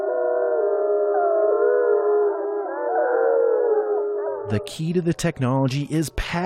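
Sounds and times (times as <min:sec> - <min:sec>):
chorus of wolves howling: 0:00.0 - 0:04.6
speech: 0:04.5 - 0:06.4.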